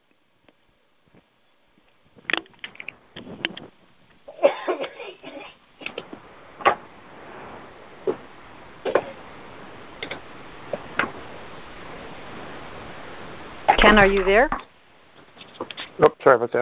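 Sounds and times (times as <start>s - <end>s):
faint hiss: 0.0s - 16.6s
person coughing on a remote meeting call: 4.3s - 5.6s
speech: 13.9s - 14.6s, 16.0s - 16.6s.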